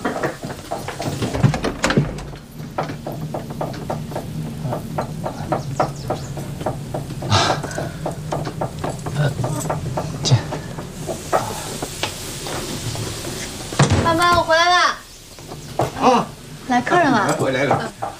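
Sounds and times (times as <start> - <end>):
evenly spaced taps: 0.0 - 12.2
sharp clunks: 0.0 - 14.4
door being opened for arriving visitor: 0.0 - 18.1
low steady hum indoors: 0.0 - 18.1.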